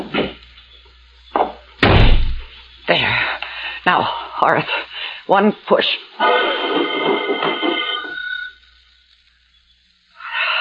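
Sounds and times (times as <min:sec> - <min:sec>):
car door slamming shut: 0:01.8 - 0:02.4
speech: 0:02.9 - 0:07.8.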